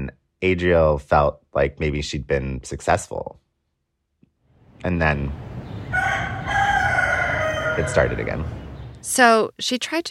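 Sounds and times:
speech: 0.1 - 3.4, 4.8 - 6.0, 7.8 - 10.0
rooster crowing at a neighbouring building in San Francisco: 5.9 - 8.6.

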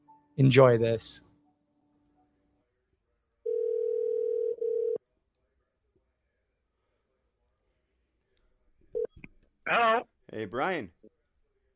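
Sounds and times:
faint noise: 0.0 - 11.7
speech: 0.4 - 1.3, 9.7 - 11.0
steady telephone dial tone: 3.5 - 5.0.

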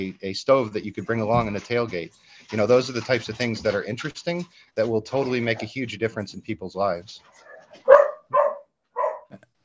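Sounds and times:
speech: 0.0 - 8.0
dog barking in a house: 7.5 - 9.3.

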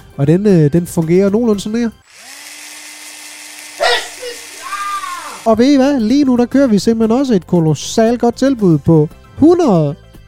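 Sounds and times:
speech: 0.2 - 2.3, 5.5 - 10.0
voice imitating a power drill: 2.1 - 5.8.

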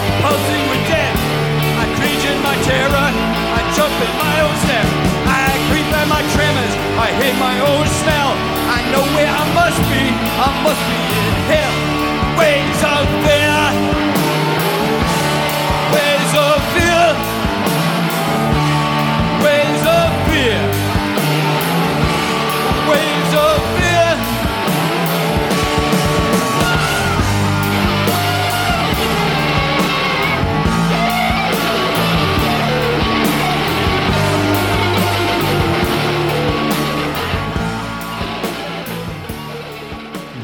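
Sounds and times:
crowd yelling and singing along to a song: 0.0 - 40.4
loud driving song: 0.0 - 40.4
speech: 8.9 - 11.8.

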